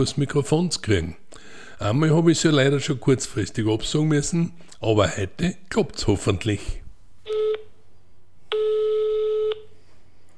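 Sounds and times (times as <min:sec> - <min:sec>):
speech: 0:00.0 - 0:01.2, 0:01.8 - 0:07.4
electronic telephone dialing tones: 0:07.3 - 0:07.7, 0:08.5 - 0:09.7.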